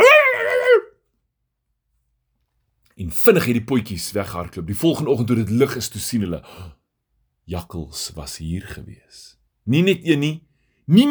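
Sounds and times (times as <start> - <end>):
person imitating a dog barking: 0.0 - 1.0
speech: 3.0 - 6.8, 7.5 - 11.1.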